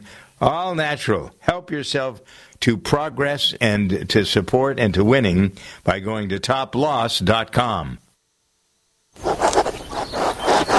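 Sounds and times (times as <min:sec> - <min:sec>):
speech: 0:00.4 - 0:08.0
fountain pen scratching across textured linen paper: 0:09.2 - 0:10.7.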